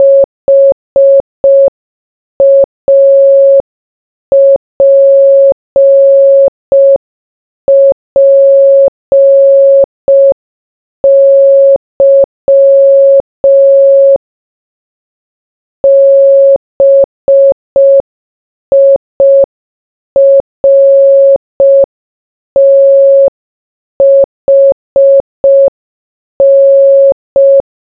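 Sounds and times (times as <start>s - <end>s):
morse code beeps: 0.0s - 1.7s, 2.4s - 3.6s, 4.3s - 7.0s, 7.7s - 10.4s, 11.0s - 14.2s, 15.8s - 18.0s, 18.7s - 19.5s, 20.2s - 21.9s, 24.0s - 25.7s, 26.4s - 27.7s.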